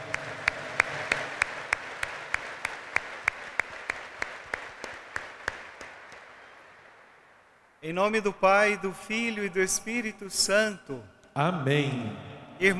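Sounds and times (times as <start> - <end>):
audience clapping in a steady even rhythm: 0.0 - 7.3
soft crowd noise: 0.0 - 7.8
speech: 7.9 - 12.7.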